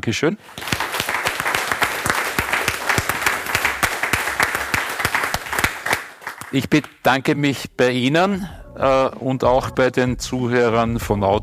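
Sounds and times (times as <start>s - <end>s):
speech: 0.0s - 0.8s, 6.5s - 11.4s
audience applauding: 0.4s - 7.0s.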